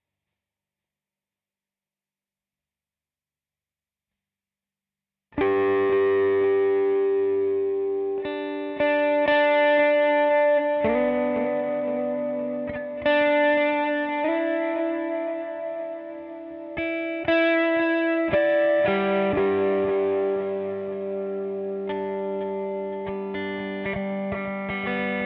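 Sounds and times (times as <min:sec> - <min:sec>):
guitar improvisation in G: 0:05.4 - 0:25.2.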